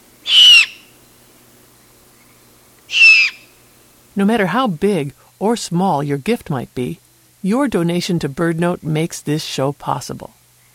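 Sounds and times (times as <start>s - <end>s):
young great horned owls begging with raspy hissing screeches: 0.2s - 1.0s, 2.9s - 3.6s
speech: 4.2s - 10.4s.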